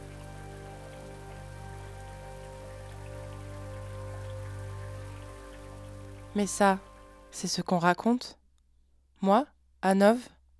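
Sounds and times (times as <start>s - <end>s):
steady rain falling: 0.0s - 7.5s
speech: 6.4s - 8.4s, 9.2s - 10.4s.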